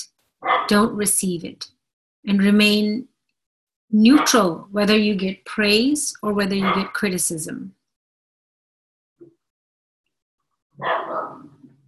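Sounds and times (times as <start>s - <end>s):
speech: 0.0s - 3.1s, 3.9s - 7.8s, 10.8s - 11.2s
dog barking: 0.4s - 0.7s, 10.8s - 11.6s.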